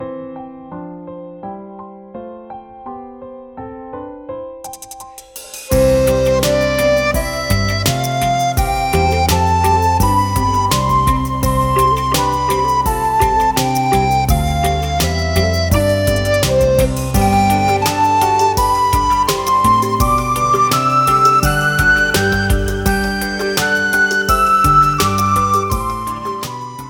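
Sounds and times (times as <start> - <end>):
musical scales: 5.7 - 26.8.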